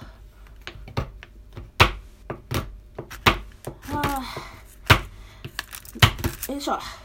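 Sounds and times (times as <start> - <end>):
kitchen knife chopping chocolate on a cutting board: 1.8 - 5.1
person sighing: 3.9 - 5.4
speech: 4.2 - 4.5, 6.5 - 7.0.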